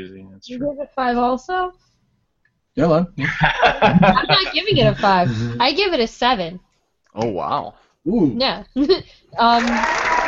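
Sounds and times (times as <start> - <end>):
speech: 0.0 - 1.9, 2.8 - 10.0
laughter: 3.2 - 5.6
loud dense hand clapping: 9.5 - 10.2.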